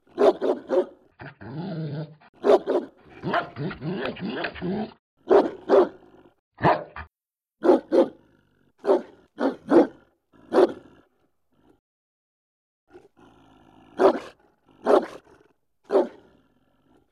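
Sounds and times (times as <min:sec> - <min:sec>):
German Shepherd dog: 0:00.2 - 0:01.0, 0:02.4 - 0:04.6, 0:05.3 - 0:06.0, 0:06.6 - 0:07.0, 0:07.6 - 0:08.2, 0:08.8 - 0:10.8, 0:14.0 - 0:15.2, 0:15.9 - 0:16.3.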